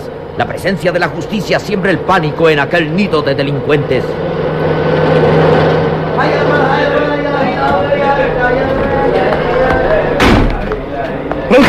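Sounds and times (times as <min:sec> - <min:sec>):
vehicle engines roaring while speeding in: 0:00.0 - 0:11.6
speech: 0:00.4 - 0:04.3
indistinct shouting voices: 0:06.0 - 0:11.6
sharp bang: 0:10.2 - 0:10.7.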